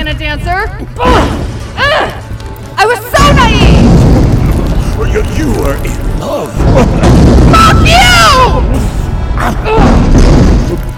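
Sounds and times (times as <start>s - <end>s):
speech: 0.3s - 1.4s, 5.3s - 7.0s
booming rumble of a space station crumbling: 3.1s - 10.9s
heavy crashes: 3.1s - 10.9s.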